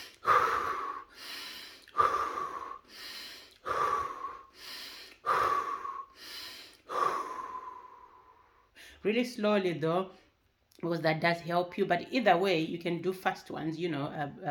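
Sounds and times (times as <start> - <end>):
slow deep breathing close to the microphone: 0.0 - 9.0
speech: 9.0 - 10.2, 10.8 - 14.5.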